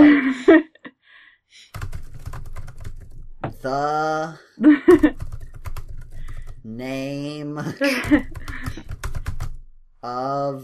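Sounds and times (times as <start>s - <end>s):
laughter: 0.0s - 0.8s, 4.6s - 5.2s, 7.6s - 8.8s
speech: 0.3s - 0.7s, 3.6s - 5.2s, 6.6s - 8.8s, 10.0s - 10.6s
typing on a computer keyboard: 1.7s - 3.8s, 5.1s - 6.6s, 8.0s - 9.6s.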